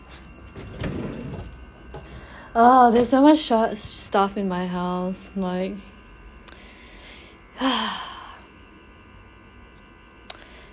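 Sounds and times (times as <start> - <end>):
drawer sliding open: 0.5 - 2.1
speech: 2.6 - 5.9.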